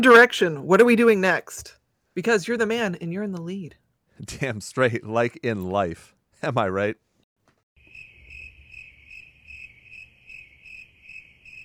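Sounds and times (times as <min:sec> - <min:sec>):
speech: 0:00.0 - 0:07.0
crickets chirping in a high pulsing trill: 0:07.8 - 0:11.6.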